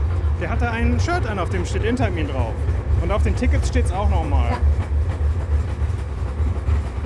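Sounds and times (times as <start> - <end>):
small park train rolling on rails: 0.0 - 7.0
speech: 0.4 - 4.8.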